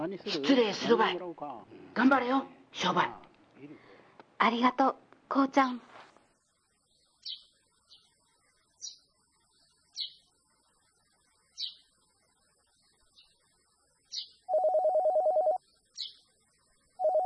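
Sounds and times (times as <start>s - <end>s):
speech: 0.0s - 3.8s, 4.4s - 5.9s
telephone ringing with a rapidly pulsing electronic ring: 14.5s - 15.6s, 17.0s - 17.2s.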